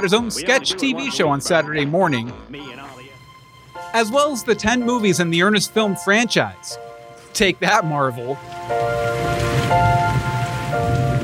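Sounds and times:
speech: 0.0 - 2.9, 3.9 - 9.8
laughter: 0.0 - 3.2
steady rain patter on a hard surface: 8.3 - 11.2.

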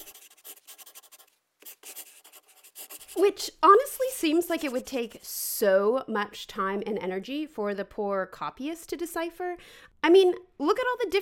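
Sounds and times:
pen scratching across paper: 0.0 - 3.2
speech: 3.2 - 11.2.

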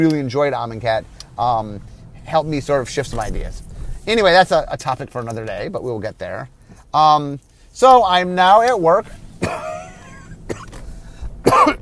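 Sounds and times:
speech: 0.0 - 9.6
person coughing harshly: 9.4 - 10.8, 11.4 - 11.7.

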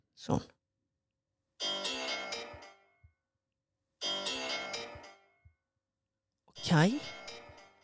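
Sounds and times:
speech: 0.2 - 0.6, 6.7 - 7.2
mobile phone ringtone: 1.6 - 2.9, 4.0 - 5.3, 6.6 - 7.8.

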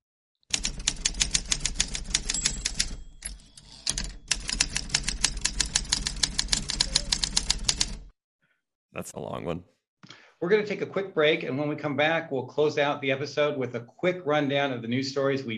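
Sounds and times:
typewriter clacking: 0.5 - 8.1
speech: 9.0 - 9.8, 10.4 - 15.5.

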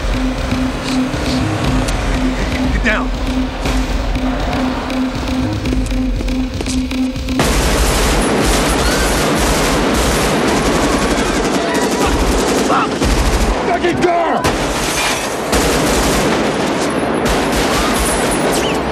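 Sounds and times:
pulsing low tone: 0.0 - 8.6
bursts of gunfire in a film shootout scene: 0.0 - 18.9.

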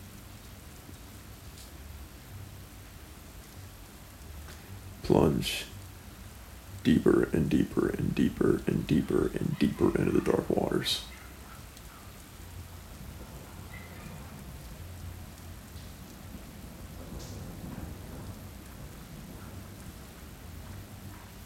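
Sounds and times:
steady dense rainfall: 0.0 - 21.4
speech: 5.1 - 5.7, 6.8 - 11.1
deep rolling thunder: 13.0 - 21.1.

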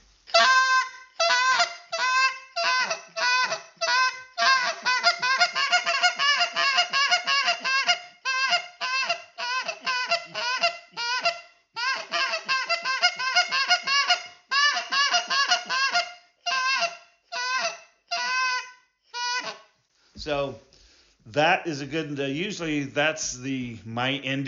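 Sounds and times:
goose call blowing a spit moan into fast hiccuping clucks: 0.3 - 19.7
speech: 21.3 - 24.4.

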